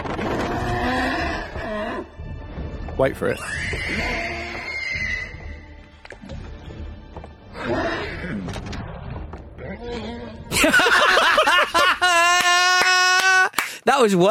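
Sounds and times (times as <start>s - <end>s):
horse whinnying: 0.2s - 2.1s, 3.3s - 5.7s
speech: 3.0s - 4.4s, 14.0s - 14.2s
laughter: 10.5s - 13.6s.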